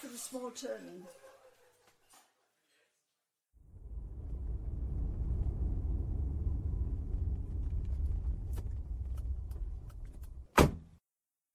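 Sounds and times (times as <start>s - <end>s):
speech: 0.0s - 1.3s
car engine and road rumble: 3.6s - 10.6s.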